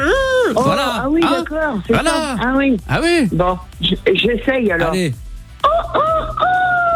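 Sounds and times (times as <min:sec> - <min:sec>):
speech: 0:00.5 - 0:05.2
woman imitating a rooster crowing: 0:05.6 - 0:06.9.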